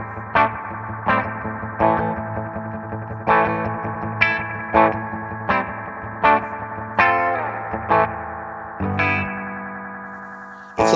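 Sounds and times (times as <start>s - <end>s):
electric guitar chords strummed through a splashy spring reverb: 0.0s - 10.9s.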